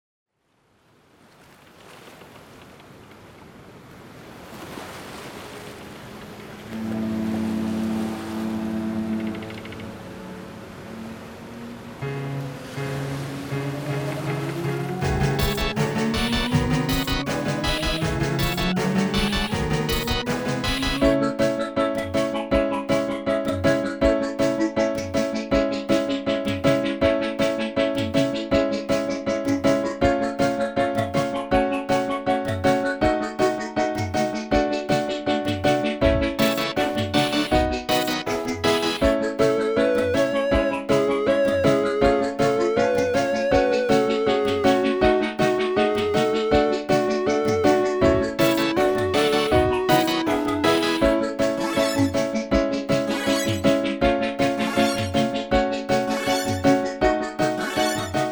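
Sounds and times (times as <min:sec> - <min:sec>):
backing music: 0:06.8 - 0:11.4, 0:12.0 - 0:58.2.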